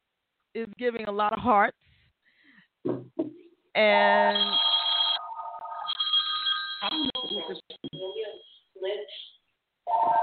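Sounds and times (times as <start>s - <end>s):
speech: 0.5s - 1.9s, 2.8s - 4.6s, 6.8s - 8.2s
telephone ringing for an incoming call: 4.3s - 8.6s.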